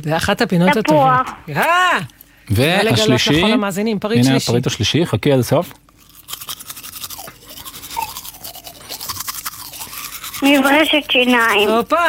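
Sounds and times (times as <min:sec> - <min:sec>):
speech: 0:00.0 - 0:05.9, 0:10.4 - 0:12.0
toothbrush brushing against teeth: 0:05.9 - 0:12.0.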